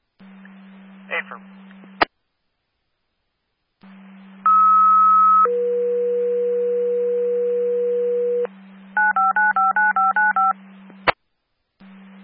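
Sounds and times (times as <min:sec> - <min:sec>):
low radio hum: 0:00.0 - 0:02.2, 0:03.8 - 0:12.2
speech: 0:01.3 - 0:01.8
radio dispatch paging alert tones: 0:09.0 - 0:10.6.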